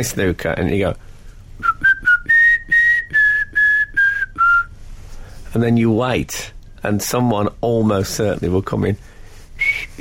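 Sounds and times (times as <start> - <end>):
speech: 0.0 - 1.1, 5.6 - 9.1
person whistling a TV theme tune: 1.6 - 4.7, 9.6 - 9.9.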